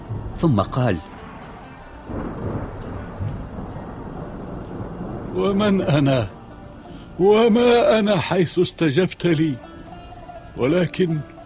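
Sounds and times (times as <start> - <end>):
thunder rumbling: 0.0 - 7.6
rain falling: 0.0 - 11.4
speech: 0.4 - 1.1, 5.4 - 6.4, 7.2 - 9.7, 10.6 - 11.3.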